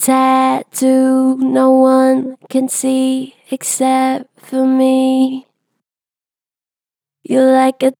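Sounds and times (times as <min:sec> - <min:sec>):
gentle flat-pitch vocals: 0:00.0 - 0:05.5, 0:07.2 - 0:07.9.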